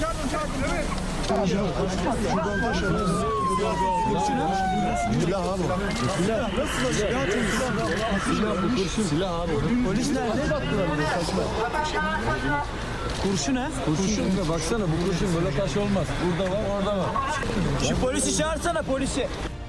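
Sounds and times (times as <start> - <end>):
dense clamor of many excited overlapping voices: 0.0 - 18.8
ambulance siren wailing at an attack scene: 1.5 - 11.0.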